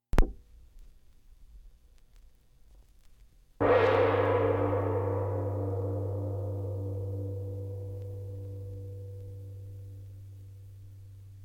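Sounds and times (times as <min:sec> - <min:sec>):
gong stroke: 0:03.6 - 0:11.1.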